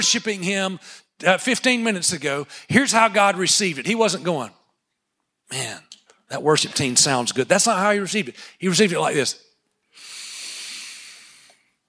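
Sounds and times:
speech: 0:00.0 - 0:04.6, 0:05.5 - 0:10.1
deep inhaling breath: 0:09.9 - 0:11.8.

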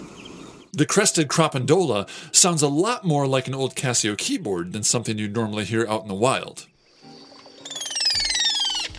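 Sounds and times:
speech: 0:00.8 - 0:07.1
snipe warble: 0:07.3 - 0:08.9.

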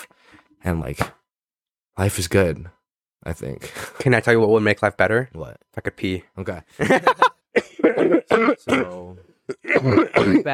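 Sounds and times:
speech: 0:00.6 - 0:01.2, 0:02.0 - 0:10.5
laughter: 0:06.8 - 0:09.0
person coughing: 0:07.6 - 0:10.5.

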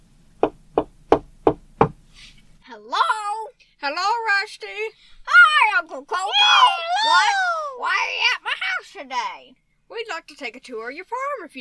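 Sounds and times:
firm knocks on a door: 0:00.4 - 0:02.0
speech: 0:02.7 - 0:03.2, 0:03.8 - 0:11.5.

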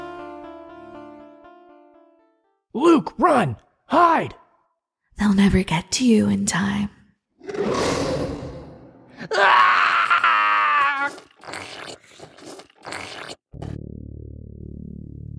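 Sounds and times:
speech: 0:02.8 - 0:04.4, 0:05.2 - 0:07.8
loud high-pitched human scream: 0:09.2 - 0:11.3.

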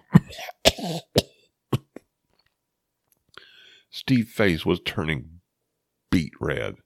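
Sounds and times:
harsh hacking coughs: 0:00.0 - 0:02.1
speech: 0:00.3 - 0:01.1, 0:04.1 - 0:05.4, 0:06.3 - 0:06.8
raspy wheezing breaths: 0:03.4 - 0:03.9.

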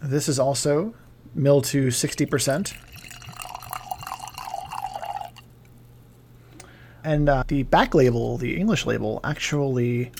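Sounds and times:
speech: 0:00.1 - 0:03.2, 0:07.0 - 0:10.1
sake pouring from a bottle into a glass: 0:02.2 - 0:05.6.

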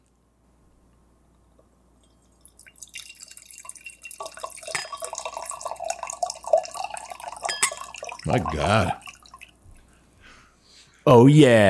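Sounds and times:
red wine poured through an aerator pouring spout into a glass: 0:02.0 - 0:09.6
speech: 0:08.3 - 0:09.0, 0:11.1 - 0:11.6.

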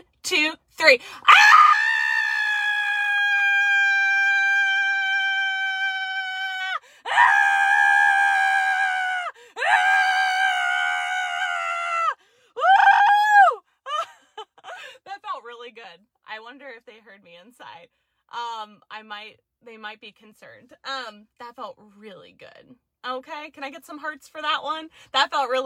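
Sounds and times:
speech: 0:00.3 - 0:01.5, 0:18.6 - 0:25.6
person screaming loudly: 0:01.3 - 0:13.6.

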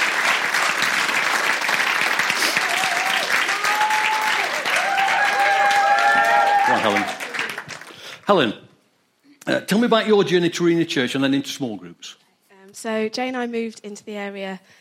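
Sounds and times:
audience applause: 0:00.0 - 0:08.2
voices whooping or calling out: 0:02.6 - 0:07.5
speech: 0:08.3 - 0:08.6, 0:09.5 - 0:14.7.

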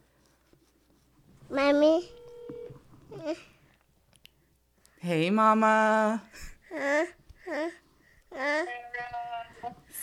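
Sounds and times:
speech: 0:01.5 - 0:02.2, 0:03.2 - 0:03.5, 0:05.0 - 0:07.8, 0:08.4 - 0:09.8
video call ringing tone: 0:01.5 - 0:03.4, 0:08.7 - 0:09.8
young child babbling: 0:03.1 - 0:03.5, 0:06.7 - 0:08.7.

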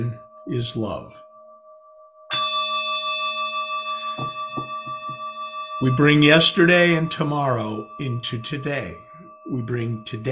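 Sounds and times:
speech: 0:00.0 - 0:01.3, 0:04.2 - 0:04.7, 0:05.8 - 0:10.2
meditation bell struck and ringing: 0:00.0 - 0:10.2
soft thumps: 0:04.2 - 0:05.3.

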